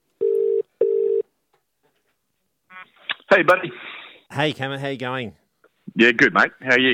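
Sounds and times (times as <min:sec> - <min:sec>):
steady electronic ringback tone of an outgoing phone call: 0:00.2 - 0:01.2
speech: 0:03.4 - 0:05.4, 0:06.0 - 0:06.9.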